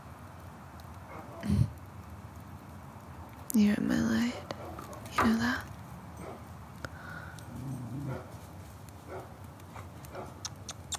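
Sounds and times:
steady low outdoor rumble: 0:00.0 - 0:10.9
neighbor's dog barking faintly: 0:01.1 - 0:01.4, 0:04.4 - 0:05.0, 0:06.2 - 0:06.4, 0:08.0 - 0:08.3, 0:09.1 - 0:10.4
speech: 0:03.6 - 0:04.5.

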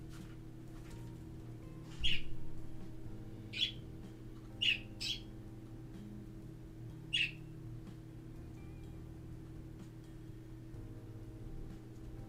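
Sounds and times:
steady low hum: 0:00.0 - 0:12.2
birds chirping and squawking: 0:01.9 - 0:05.4, 0:07.1 - 0:07.5.

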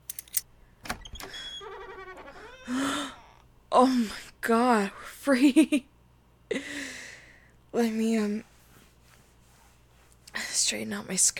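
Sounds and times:
key turning in a door lock: 0:00.0 - 0:00.4
door creaking and squeaking open: 0:00.2 - 0:03.5
speech: 0:03.8 - 0:05.9, 0:06.5 - 0:06.8, 0:07.8 - 0:08.5, 0:10.7 - 0:11.3.

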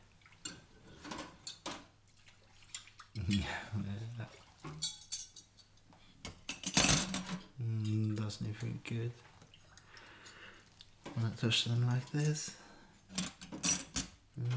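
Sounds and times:
plates, glasses and cutlery clinking while doing the dishes: 0:00.4 - 0:01.9, 0:04.4 - 0:08.2, 0:12.0 - 0:14.5
speech: 0:03.3 - 0:05.0, 0:08.3 - 0:09.3, 0:11.2 - 0:13.3.

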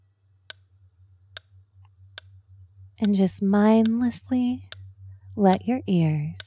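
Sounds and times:
low constant hum: 0:00.0 - 0:06.4
speech: 0:03.0 - 0:04.7, 0:05.4 - 0:06.4
metronome ticking: 0:03.0 - 0:06.4.

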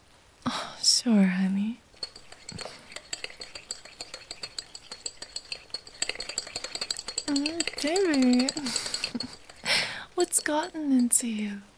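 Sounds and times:
speech: 0:01.0 - 0:01.8, 0:10.5 - 0:11.7
stirring with a utensil: 0:01.8 - 0:11.2.

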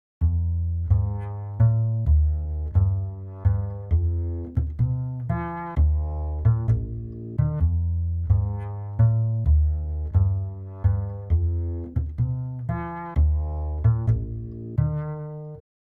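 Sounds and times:
bass: 0:00.0 - 0:15.7.

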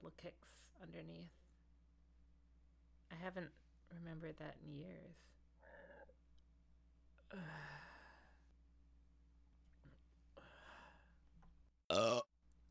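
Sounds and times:
speech: 0:00.1 - 0:01.4, 0:03.1 - 0:06.2, 0:07.3 - 0:07.9
person burping: 0:11.9 - 0:12.3.

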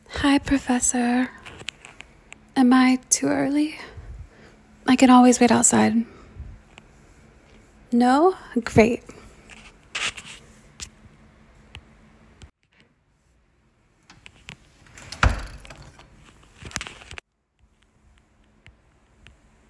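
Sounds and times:
speech: 0:00.3 - 0:01.4, 0:02.6 - 0:03.9, 0:04.9 - 0:06.1, 0:07.9 - 0:09.2
door pushed shut with a solid thud: 0:15.0 - 0:15.9.

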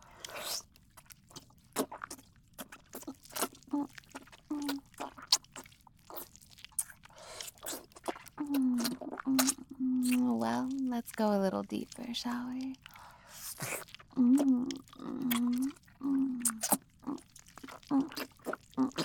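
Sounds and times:
wet slurping and sucking mouth sounds during oral sex: 0:00.0 - 0:19.0
speech: 0:11.2 - 0:12.9
person humming: 0:14.2 - 0:16.6.

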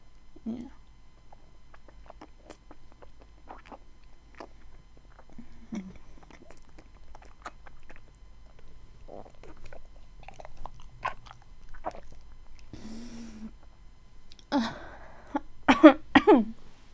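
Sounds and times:
mouth and chewing-like noises: 0:00.1 - 0:12.8, 0:13.5 - 0:14.5
speech: 0:00.4 - 0:00.8
harsh coughs: 0:15.7 - 0:16.5.

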